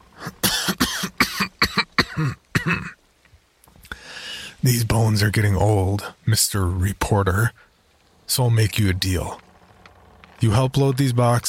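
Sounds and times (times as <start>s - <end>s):
harsh chesty coughing: 0.2s - 3.0s
speech: 2.2s - 3.0s, 4.6s - 7.7s, 8.3s - 9.5s, 10.4s - 11.4s.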